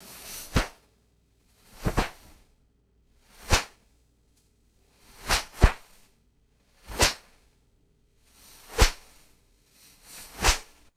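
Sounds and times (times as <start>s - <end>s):
sharp cloth whipping and snapping: 0.4s - 0.8s, 1.8s - 2.4s, 3.4s - 3.8s, 5.2s - 5.9s, 6.9s - 7.3s, 8.7s - 9.2s, 10.2s - 10.9s.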